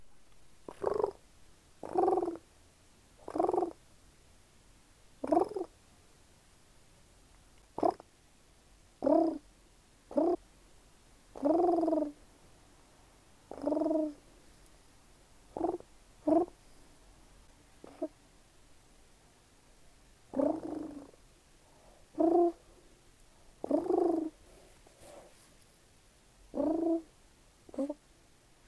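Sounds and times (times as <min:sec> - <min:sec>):
pigeon cooing in purr-like bursts: 0:00.7 - 0:01.2, 0:01.8 - 0:02.4, 0:03.2 - 0:03.8, 0:05.2 - 0:05.7, 0:07.8 - 0:08.0, 0:09.0 - 0:09.4, 0:10.1 - 0:10.4, 0:11.4 - 0:12.2, 0:13.5 - 0:14.2, 0:15.6 - 0:16.6, 0:17.8 - 0:18.2, 0:20.3 - 0:21.2, 0:22.2 - 0:22.6, 0:23.6 - 0:24.4, 0:26.5 - 0:27.1, 0:27.7 - 0:28.0.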